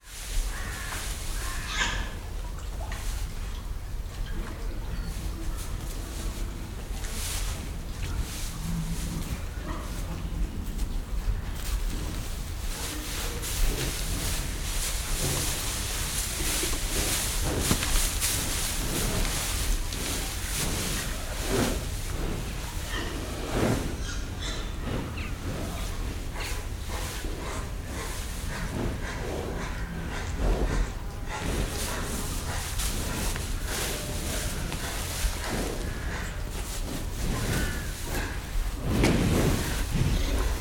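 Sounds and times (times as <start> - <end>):
cows walking on hay in farm sheds: 0.0 - 40.5
pigs in farm sheds: 0.1 - 40.5
crows in background: 0.4 - 2.2, 37.4 - 38.4
cows sniffing at microphone: 5.0 - 40.5.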